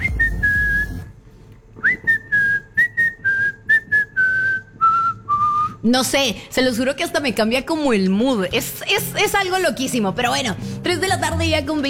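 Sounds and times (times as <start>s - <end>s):
whistled melody from a song: 0.0s - 1.1s, 1.8s - 5.8s
speech: 5.8s - 11.8s.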